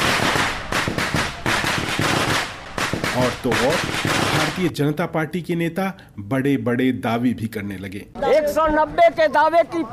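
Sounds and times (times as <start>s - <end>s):
firecrackers bursting during celebration: 0.0s - 4.7s
speech: 3.2s - 9.9s.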